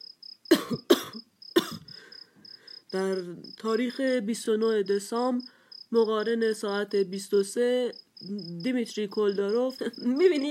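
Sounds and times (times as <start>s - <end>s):
man coughing: 0.5s - 2.0s
speech: 0.7s - 0.9s, 2.9s - 10.4s.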